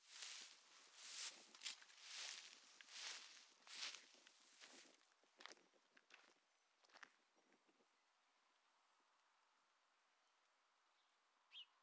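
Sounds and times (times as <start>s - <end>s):
footsteps on grass at a sawmill wasteland in Châtenois: 0.0s - 5.0s.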